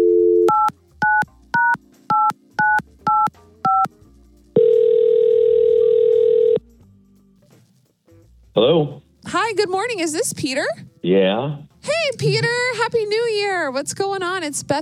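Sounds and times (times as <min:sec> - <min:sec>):
long loud telephone ringing tone: 0:00.0 - 0:01.2, 0:04.6 - 0:06.6
telephone dial tone: 0:00.0 - 0:03.9, 0:04.6 - 0:06.6
telephone touch-tone beeps: 0:00.0 - 0:03.9
speech: 0:09.5 - 0:14.8.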